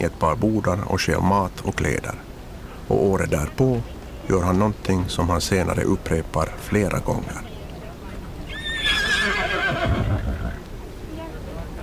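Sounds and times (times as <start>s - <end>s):
speech: 0.0s - 2.3s, 2.9s - 7.5s
horse whinnying: 8.5s - 10.6s.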